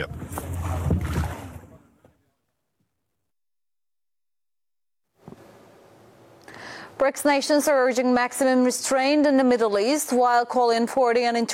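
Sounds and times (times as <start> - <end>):
churning water: 0.0 - 2.0
small fishing boat motor rumbling in Gaza's waters: 0.0 - 2.1
speech: 7.0 - 11.5.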